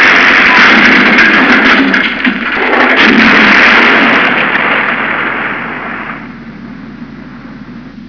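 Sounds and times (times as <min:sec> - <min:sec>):
car crash: 0:00.0 - 0:06.3.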